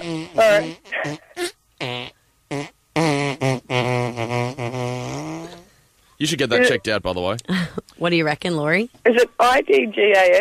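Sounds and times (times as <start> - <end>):
melody performed with mouth-made fart noises: 0.0 - 5.8
speech: 0.2 - 1.2, 6.2 - 10.3.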